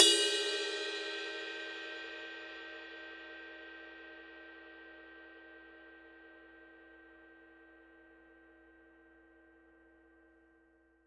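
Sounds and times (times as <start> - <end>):
ride cymbal bell: 0.0 - 2.3.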